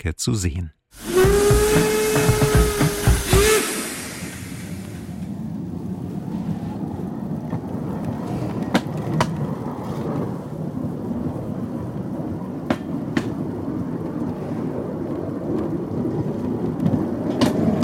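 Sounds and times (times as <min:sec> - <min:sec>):
speech: 0:00.0 - 0:02.0
small train wheels clacking over rail joints: 0:01.0 - 0:04.6
low rumble of the moving train: 0:01.0 - 0:17.8.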